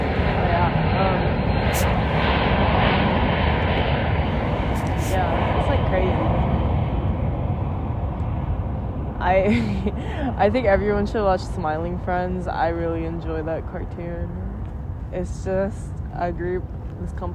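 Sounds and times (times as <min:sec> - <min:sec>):
airplane passing low overhead: 0:00.0 - 0:17.3
speech: 0:09.4 - 0:14.4, 0:15.1 - 0:17.3.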